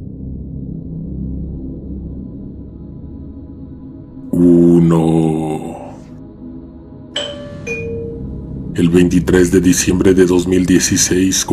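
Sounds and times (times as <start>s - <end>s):
speech: 4.4s - 5.5s, 8.8s - 11.5s
two-note house doorbell chime: 7.2s - 8.5s.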